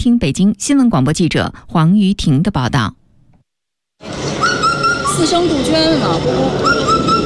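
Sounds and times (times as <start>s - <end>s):
speech: 0.0s - 3.0s, 4.0s - 4.6s, 5.2s - 7.1s
Indian cuckoo whistled multi-note call: 4.4s - 5.4s, 6.4s - 7.2s
murmur of voices in a busy indoor space: 4.6s - 7.2s.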